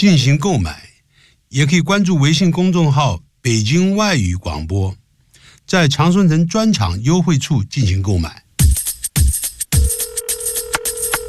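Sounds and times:
speech: 0:00.0 - 0:00.9, 0:01.5 - 0:05.0, 0:05.7 - 0:08.4
telephone ringing: 0:09.8 - 0:11.2.

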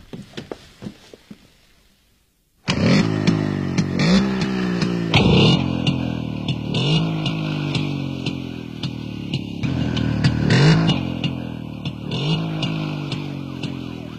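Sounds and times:
engines rumbling: 0:02.6 - 0:14.1
police car siren wailing: 0:12.9 - 0:14.1.

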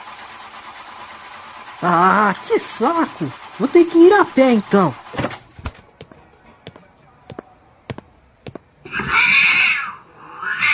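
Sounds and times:
speech: 0:01.8 - 0:05.1
black cat meowing: 0:08.9 - 0:10.7.

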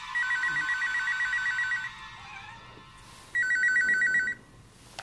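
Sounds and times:
telephone ringing: 0:00.2 - 0:02.2, 0:03.3 - 0:04.5.

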